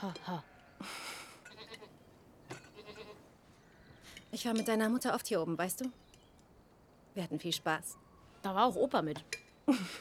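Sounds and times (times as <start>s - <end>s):
speech: 0.0s - 1.0s, 4.3s - 6.0s, 7.2s - 9.9s
soft outdoor hiss: 0.0s - 9.9s
sheep and goats bleating: 0.1s - 2.0s, 2.6s - 3.3s.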